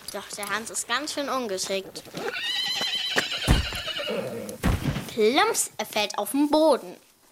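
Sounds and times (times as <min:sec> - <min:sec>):
heavy hoof clops of a horse being ridden: 0:00.0 - 0:04.6
speech: 0:00.1 - 0:02.9, 0:05.2 - 0:07.1
horse whinnying in a long wavering neigh: 0:02.2 - 0:04.6.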